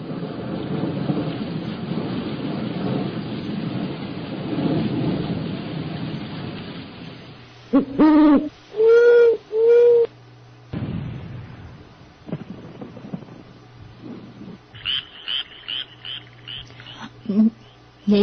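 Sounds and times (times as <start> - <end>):
thunder rumbling: 0.0 - 8.6, 10.7 - 18.2
steady heavy rain: 0.0 - 8.7, 10.8 - 17.3
owl hooting: 7.7 - 10.1, 14.8 - 18.2.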